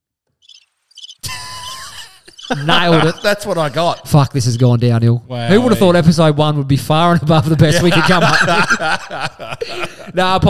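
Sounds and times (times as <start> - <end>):
cricket chirps sound effect: 0.4 - 3.4
laughter: 1.2 - 4.2, 7.6 - 10.4
speech: 2.5 - 10.4.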